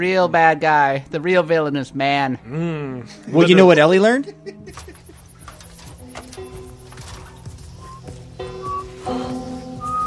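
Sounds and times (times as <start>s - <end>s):
speech: 0.0s - 5.0s
person whistling a short halting tune: 7.8s - 9.1s, 9.7s - 10.0s.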